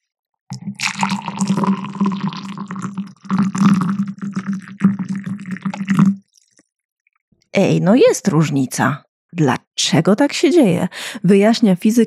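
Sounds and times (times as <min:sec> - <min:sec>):
hot tap water pouring into a glass: 0:00.5 - 0:06.6
speech: 0:07.6 - 0:12.0.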